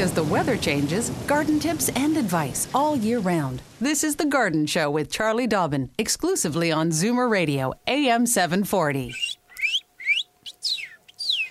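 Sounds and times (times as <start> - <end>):
speech: 0.0 - 9.4
person whistling a cardinal-like birdsong: 9.1 - 11.4.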